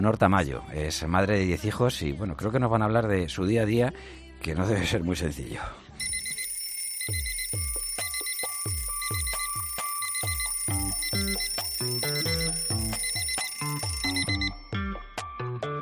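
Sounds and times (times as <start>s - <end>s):
speech: 0.0s - 5.8s
loud electronic alarm clock beeping: 6.0s - 14.7s.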